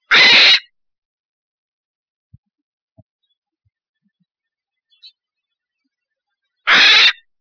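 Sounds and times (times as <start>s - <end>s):
brown falcon: 0.0s - 0.7s, 6.6s - 7.2s.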